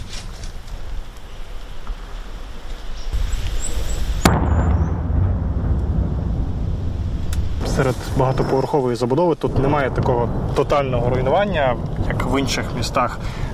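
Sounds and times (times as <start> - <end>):
constant low rumble: 0.0 - 13.5
shelling booms: 3.2 - 13.5
heavy shelling explosion blast: 4.0 - 13.5
speech: 7.8 - 13.5.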